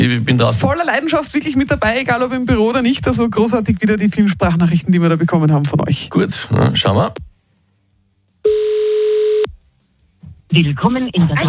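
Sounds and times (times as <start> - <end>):
speech: 0.2 - 7.3, 10.5 - 11.4
telephone ringing: 8.5 - 9.5.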